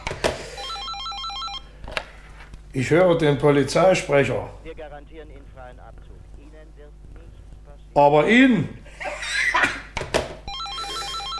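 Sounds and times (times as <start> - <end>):
electronic telephone ringing: 0.0 - 1.7, 10.3 - 11.3
speech: 2.8 - 9.2
knocks: 9.6 - 10.5.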